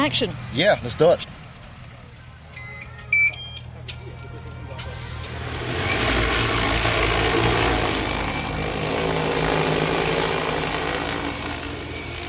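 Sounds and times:
speech: 0.0 - 1.4
quick electronic beeps: 2.6 - 3.7
large agricultural spray drone multi-rotor buzz: 4.8 - 12.2.

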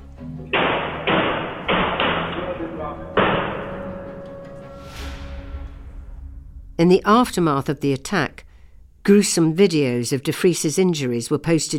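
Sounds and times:
gunshots fired off-screen with lingering echo: 0.5 - 4.0
speech: 6.8 - 11.7.

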